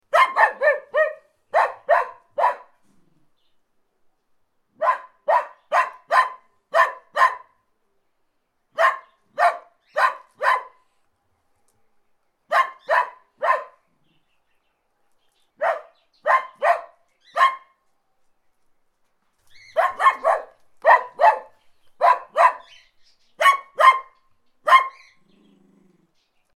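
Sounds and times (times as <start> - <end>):
Dachshund barking: 0.1 - 2.8, 4.8 - 7.6, 8.7 - 10.9, 12.5 - 13.8, 15.6 - 17.8, 19.6 - 25.2.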